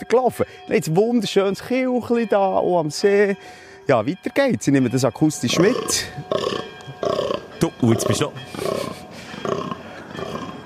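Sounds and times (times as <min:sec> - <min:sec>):
speech: 0:00.1 - 0:06.6, 0:07.8 - 0:09.0
red deer stag roaring during the rut: 0:05.5 - 0:10.6.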